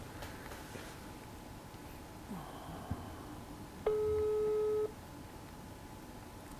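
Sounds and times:
low hum: 0.0s - 6.5s
phone ringback tone over a speakerphone: 3.9s - 4.9s.

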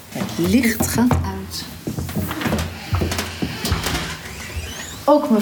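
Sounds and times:
speech: 0.4s - 1.7s, 5.1s - 5.4s
room door shutting with a firm thud: 2.4s - 5.0s.

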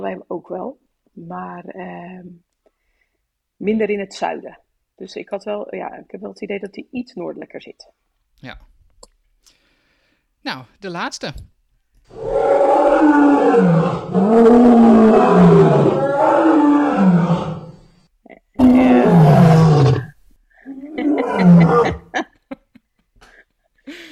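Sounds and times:
speech: 0.0s - 2.5s, 3.6s - 8.7s, 10.4s - 11.5s, 12.1s - 16.8s
lion roaring: 12.1s - 17.9s, 18.6s - 22.1s
laughter: 20.7s - 24.0s.

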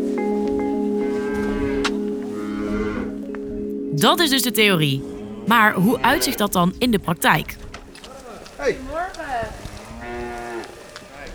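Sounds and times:
faint noise: 0.0s - 11.3s
dairy cows mooing on a dairy farmyard in Schermerhoorn North Holland Netherlands: 1.0s - 3.4s, 5.1s - 6.2s, 8.9s - 11.3s
speech: 4.0s - 7.6s, 8.6s - 8.8s.

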